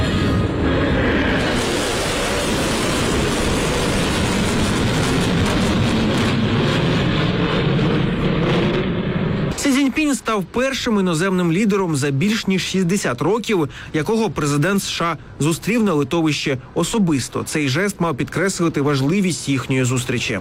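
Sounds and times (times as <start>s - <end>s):
military jet aircraft passing overhead: 0.0s - 12.8s
speech: 10.4s - 20.3s.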